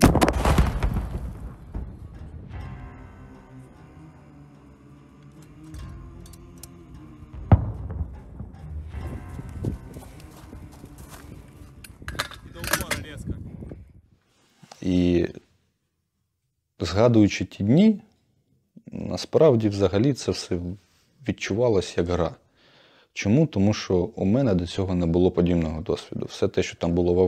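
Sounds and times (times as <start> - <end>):
recoilless grenade launcher firing a shot at enemy positions: 0.0 - 1.6
scattered rumbling noise: 0.0 - 3.9, 7.1 - 12.6
speech: 16.9 - 18.1, 19.1 - 22.4, 23.2 - 27.2.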